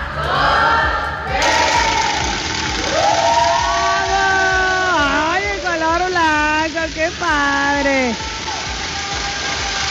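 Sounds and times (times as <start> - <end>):
family shouting and cheering at a car unveiling: 0.0 - 9.8
hiss: 1.2 - 9.8.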